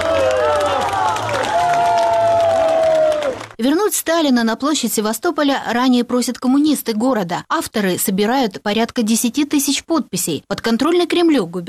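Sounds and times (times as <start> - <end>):
audience of mostly pensioners giving a standing ovation: 0.0 - 3.6
speech: 3.6 - 11.6.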